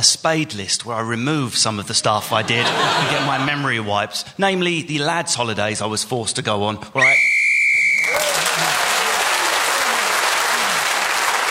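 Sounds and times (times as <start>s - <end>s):
speech: 0.0s - 7.3s
laughter: 2.0s - 3.9s, 8.1s - 11.1s
sustained whistle blast ending a round: 7.0s - 8.4s
loud applause: 7.0s - 11.5s.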